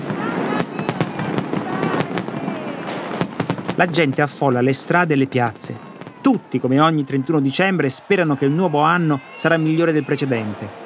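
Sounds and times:
fireworks exploding: 0:00.0 - 0:07.6, 0:09.2 - 0:09.4
speech: 0:03.8 - 0:10.8.

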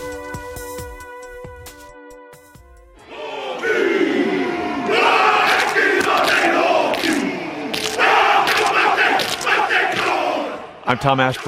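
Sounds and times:
crowd roar: 0:03.0 - 0:11.4
rugby team men chanting a traditional Maori warrior dance: 0:03.0 - 0:11.4.

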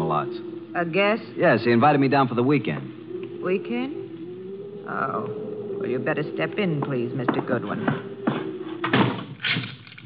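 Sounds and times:
faint hum: 0:00.0 - 0:09.5
speech: 0:00.1 - 0:04.0, 0:04.9 - 0:08.1, 0:09.4 - 0:09.8
door thudding shut: 0:07.9 - 0:09.7.

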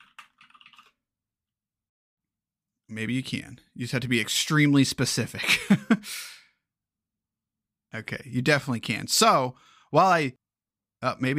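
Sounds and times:
typing on a computer keyboard: 0:00.0 - 0:01.0
speech: 0:02.9 - 0:06.4, 0:07.9 - 0:10.4, 0:11.0 - 0:11.3.

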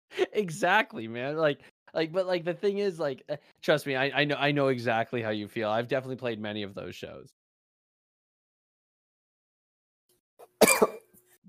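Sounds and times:
speech: 0:00.4 - 0:07.4
person coughing: 0:10.5 - 0:11.4.

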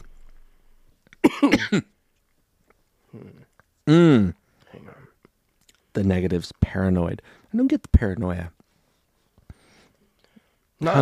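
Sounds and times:
harsh coughs after smoking a pipe: 0:01.2 - 0:02.0
speech: 0:01.4 - 0:01.9, 0:03.1 - 0:05.0, 0:06.0 - 0:08.6, 0:10.8 - 0:10.9.

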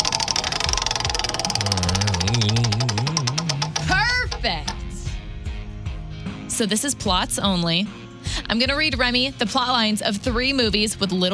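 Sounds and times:
wavering tone: 0:00.0 - 0:04.0
prize wheel spinning and clicking in a game: 0:00.0 - 0:04.8
speech: 0:06.6 - 0:11.3.

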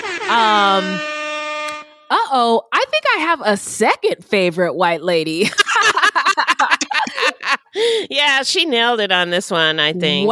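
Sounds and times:
loud brassy air horn blast sound effect: 0:00.0 - 0:02.3
speech: 0:00.3 - 0:01.2, 0:02.1 - 0:06.5, 0:07.8 - 0:10.2
laughter: 0:05.4 - 0:08.0.

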